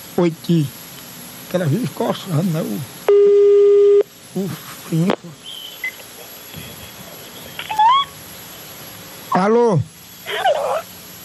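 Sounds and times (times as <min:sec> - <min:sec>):
speech: 0:00.2 - 0:00.8, 0:01.5 - 0:03.0, 0:04.4 - 0:05.4, 0:09.4 - 0:10.9
telephone ringing tone on a call: 0:03.1 - 0:04.0.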